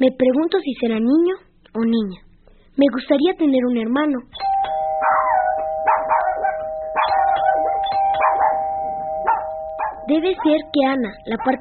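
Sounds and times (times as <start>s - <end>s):
speech: 0.0s - 5.2s, 10.1s - 11.6s
steady ringing tone: 4.4s - 11.6s
dog barking: 5.0s - 8.7s, 9.3s - 10.6s, 11.3s - 11.6s.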